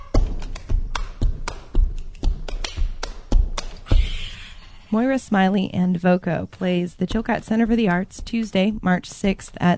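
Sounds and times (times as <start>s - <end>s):
rhythmic body percussion slaps and taps by a folk music group: 0.0s - 4.2s
deep body percussion thumps: 0.0s - 4.6s, 6.9s - 9.7s
speech: 4.9s - 9.7s.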